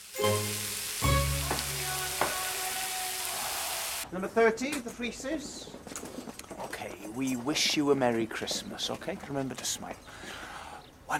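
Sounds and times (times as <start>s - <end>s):
hot roasting fat sizzling in a baking tray: 0.0s - 4.0s
speech: 4.1s - 5.9s, 7.1s - 10.4s.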